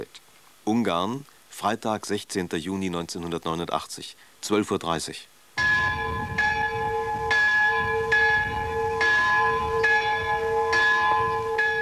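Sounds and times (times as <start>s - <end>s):
speech: 0.0s - 5.7s
church bells ringing in Hungary in remembrance of 1956 revolution victims: 5.6s - 11.8s.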